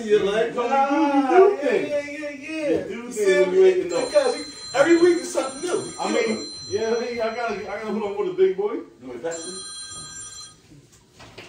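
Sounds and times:
speech: 0.0 - 9.8
low room noise: 0.0 - 11.4
phone ringing with a bright electronic tone: 3.4 - 8.3, 9.2 - 10.7.

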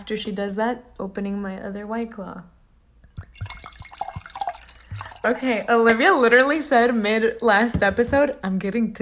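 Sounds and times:
speech: 0.0 - 2.6, 5.2 - 9.0
wine pouring into a glass: 3.1 - 5.5.

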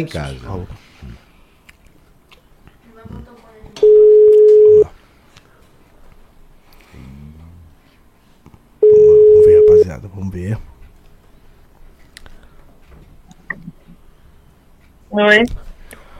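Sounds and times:
speech: 0.0 - 1.2, 9.9 - 10.7, 15.1 - 15.6
telephone line tone while a call is placed: 3.8 - 4.9, 8.8 - 9.9.

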